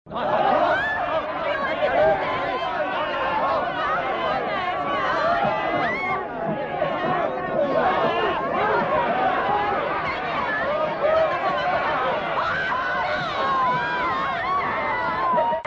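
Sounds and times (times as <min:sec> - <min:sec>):
laughter: 0:00.2 - 0:15.6
screams: 0:00.2 - 0:15.6.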